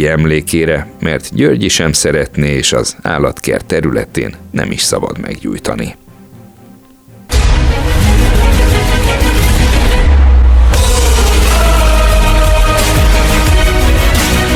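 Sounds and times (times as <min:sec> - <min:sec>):
speech: 0:00.0 - 0:06.0
official football tournament anthem with booming drums and orchestra: 0:07.3 - 0:14.5.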